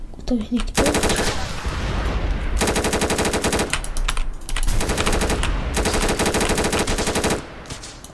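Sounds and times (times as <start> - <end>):
speech: 0.3 - 1.2
automatic machine-gun bursts in a video game: 0.7 - 1.7, 2.6 - 8.1.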